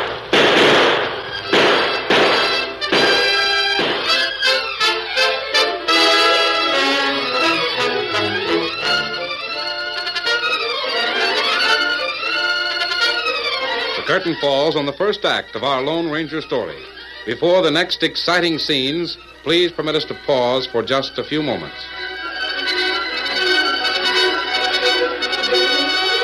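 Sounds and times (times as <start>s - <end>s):
gunshots in a sheriff's shootout with an outlaw: 0.0s - 4.6s
dramatic music: 0.0s - 26.2s
speech: 14.2s - 22.0s.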